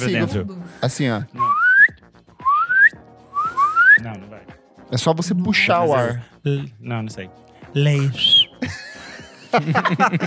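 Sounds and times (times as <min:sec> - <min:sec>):
speech: 0:00.0 - 0:01.5, 0:04.0 - 0:08.8, 0:09.5 - 0:10.2
person whistling rising notes: 0:01.4 - 0:04.0, 0:08.0 - 0:08.6
laughter: 0:08.1 - 0:10.2.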